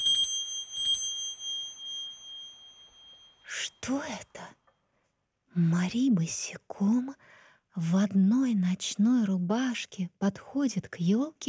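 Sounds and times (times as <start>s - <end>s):
small bells chiming: 0.0s - 4.6s
speech: 3.5s - 4.6s, 5.6s - 11.4s.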